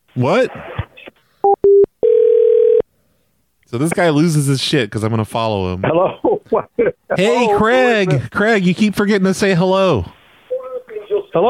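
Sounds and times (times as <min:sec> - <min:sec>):
speech: 0:00.2 - 0:00.7, 0:03.7 - 0:10.2
telephone line tones while placing a call back: 0:01.4 - 0:02.8.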